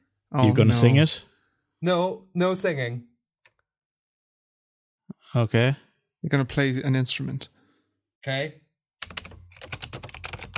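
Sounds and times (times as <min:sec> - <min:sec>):
speech: 0:00.3 - 0:03.1, 0:05.3 - 0:07.5, 0:08.2 - 0:09.2
rapid typing on a mechanical keyboard: 0:09.0 - 0:10.5.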